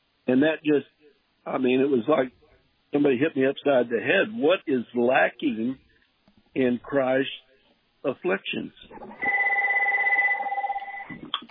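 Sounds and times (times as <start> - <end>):
speech: 0.3 - 5.8, 6.6 - 9.3
loud telephone ringer trilling with a rapid warbling buzz: 9.0 - 11.1.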